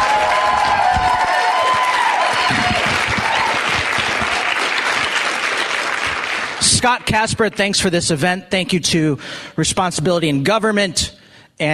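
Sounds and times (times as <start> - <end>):
scattered cheers from a live crowd: 0.0 - 6.6
live crowd applause: 0.0 - 7.1
speech: 6.8 - 11.7.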